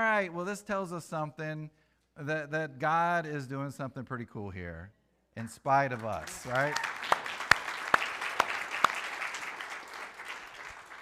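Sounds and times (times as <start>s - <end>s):
speech: 0.0s - 7.0s
audience clapping: 5.8s - 11.0s.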